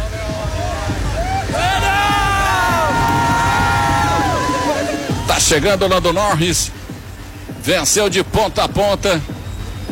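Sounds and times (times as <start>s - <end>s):
large crowd of motor-racing fans cheering and shouting: 0.0s - 6.5s
speech: 5.5s - 6.8s, 7.6s - 9.3s.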